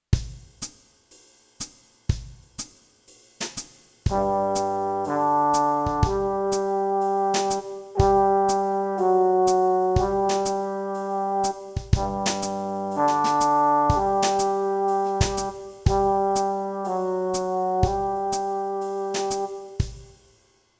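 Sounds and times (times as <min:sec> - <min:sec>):
brass playing B flat practice notes: 0:04.1 - 0:20.2.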